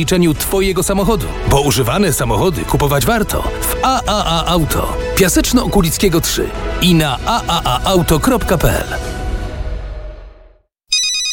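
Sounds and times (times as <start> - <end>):
speech: 0.0 - 9.1
mobile phone ringtone signalling an incoming call: 10.9 - 11.3.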